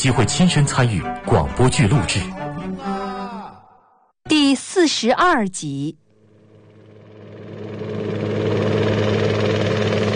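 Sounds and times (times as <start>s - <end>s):
speech: 0.0s - 2.4s, 4.3s - 6.0s
police helicopter hovering in the air: 6.2s - 10.1s.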